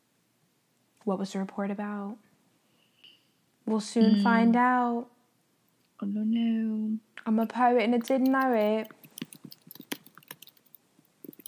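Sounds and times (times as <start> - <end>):
speech: 1.0 - 2.3, 3.7 - 5.2, 6.0 - 9.0
typing on a computer keyboard: 8.0 - 11.4.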